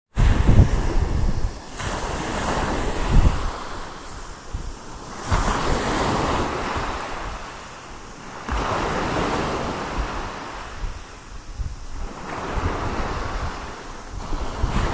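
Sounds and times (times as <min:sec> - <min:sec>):
beach ambience at Split Apple Rock: 0:00.1 - 0:14.9.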